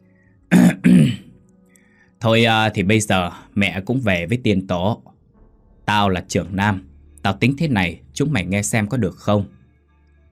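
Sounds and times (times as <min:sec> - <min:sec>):
man clearing his throat: 0:00.5 - 0:01.3
speech: 0:02.2 - 0:05.1, 0:05.9 - 0:09.6.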